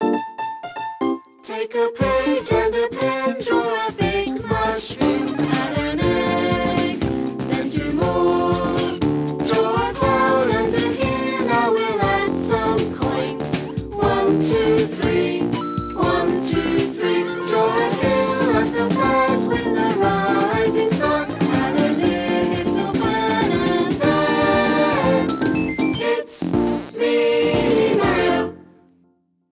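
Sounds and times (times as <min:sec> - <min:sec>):
song: 0:01.0 - 0:28.6.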